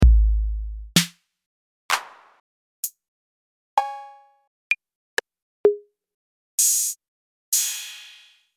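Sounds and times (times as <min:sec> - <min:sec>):
TR-808 drum machine kit: 0:00.0 - 0:01.1.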